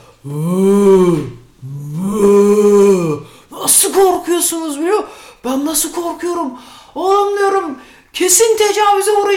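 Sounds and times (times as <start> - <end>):
person making raspberry noises imitating a fart: 0.0 - 3.5
speech: 0.2 - 1.4, 3.8 - 9.3.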